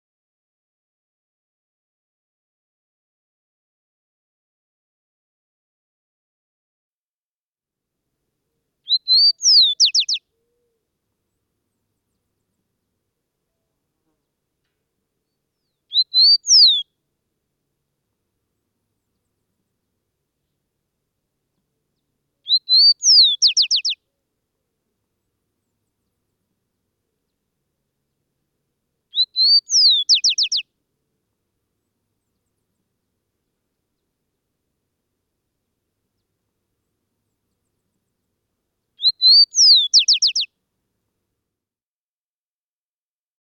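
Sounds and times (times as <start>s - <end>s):
chincol bird calling: 8.9s - 10.7s, 15.9s - 16.8s, 22.5s - 24.0s, 29.1s - 30.6s, 39.0s - 40.5s.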